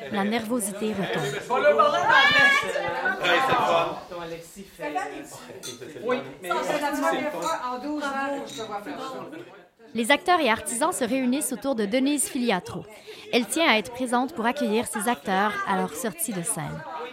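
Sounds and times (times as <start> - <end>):
party crowd chatter in a basement: 0.0 - 17.1
speech: 0.0 - 17.1
glasses clinking: 5.6 - 5.8.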